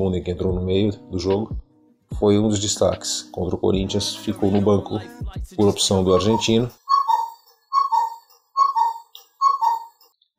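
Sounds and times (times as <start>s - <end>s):
speech: 0.0s - 6.8s
cuckoo clock calling: 5.9s - 10.2s.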